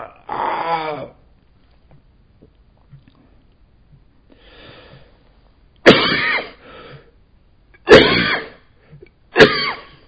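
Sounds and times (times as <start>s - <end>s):
harsh forceful throaty coughs: 5.9s - 6.6s, 7.8s - 8.6s, 9.4s - 10.0s.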